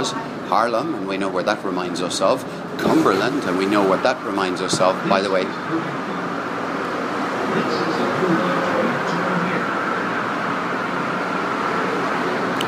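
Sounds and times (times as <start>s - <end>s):
speech: 0.0s - 6.1s
traffic roar on a busy freeway: 0.0s - 12.6s.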